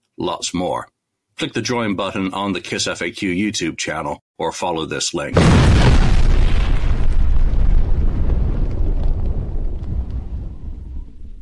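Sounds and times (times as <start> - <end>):
speech: 0.2 - 6.1
deep boom sound effect in podcast intro: 5.4 - 11.4.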